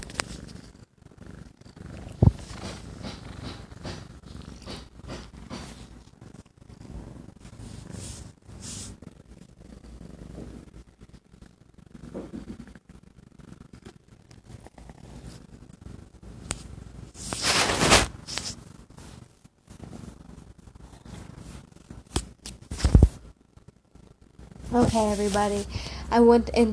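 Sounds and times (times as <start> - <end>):
cats purring: 0.0 - 26.6
speech: 24.8 - 26.7.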